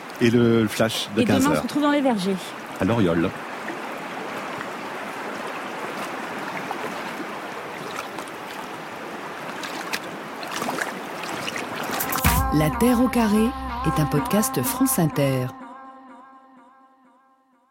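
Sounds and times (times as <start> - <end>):
river water flowing: 0.0 - 12.4
speech: 0.2 - 3.5, 12.6 - 15.6.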